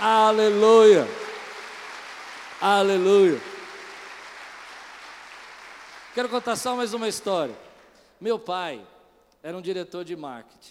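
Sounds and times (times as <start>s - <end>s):
speech: 0.0s - 1.2s, 2.6s - 3.5s, 6.2s - 7.6s, 8.2s - 10.6s
audience applauding: 0.0s - 7.8s.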